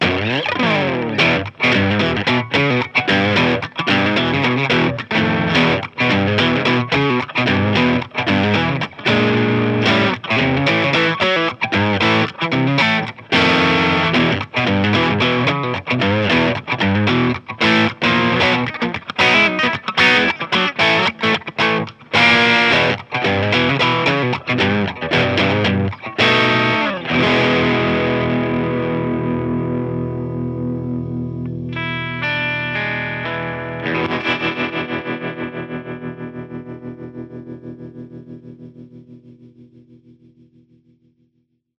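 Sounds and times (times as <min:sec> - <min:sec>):
clean Stratocaster electric guitar through SD1 with EQ: 0:00.0 - 0:41.2.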